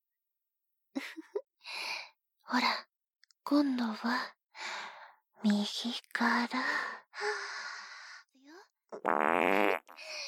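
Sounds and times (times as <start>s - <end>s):
speech: 2.5s - 2.9s, 3.5s - 4.8s, 5.4s - 7.6s, 8.9s - 10.2s
fart: 8.9s - 10.0s.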